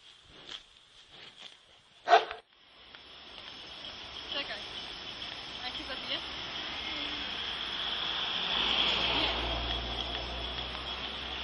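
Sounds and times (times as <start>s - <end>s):
hiss: 0.0s - 11.4s
dog barking: 2.0s - 2.4s.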